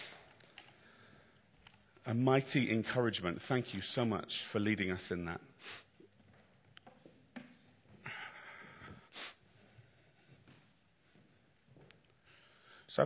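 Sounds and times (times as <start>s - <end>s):
speech: 2.1s - 5.8s
nasal sniffs: 9.1s - 9.4s.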